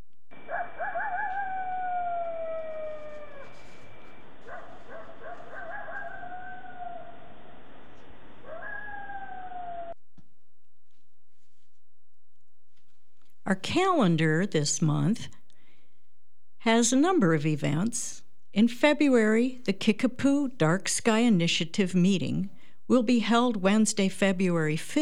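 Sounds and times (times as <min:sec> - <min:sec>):
coyotes howling and yipping while travelling on a cold winter night: 0:00.3 - 0:10.0
speech: 0:13.5 - 0:15.4, 0:16.6 - 0:25.0.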